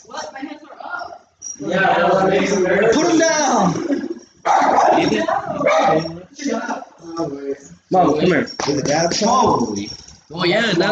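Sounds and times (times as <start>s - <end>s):
speech: 1.6s - 6.1s, 7.9s - 10.9s
dog barking: 4.4s - 6.1s.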